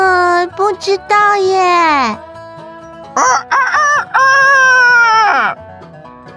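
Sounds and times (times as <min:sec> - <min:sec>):
speech: 0:00.7 - 0:02.3, 0:03.2 - 0:04.7
rooster crowing: 0:03.2 - 0:05.6.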